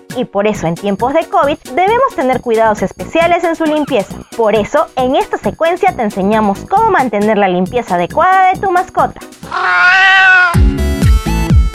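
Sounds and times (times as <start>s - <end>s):
speech: 0.2s - 9.9s
cat meowing: 9.5s - 10.6s.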